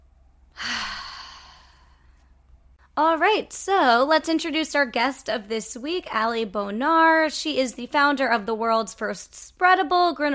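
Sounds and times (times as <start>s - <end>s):
deep breath during a guided breathing exercise: 0.5s - 2.4s
speech: 3.0s - 10.3s.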